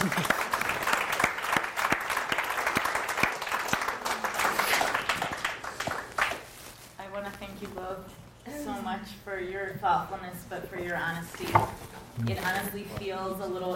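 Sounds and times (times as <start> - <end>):
audience applauding: 0.0 - 6.5
sharp individual claps: 0.0 - 6.5
speech: 9.0 - 13.7.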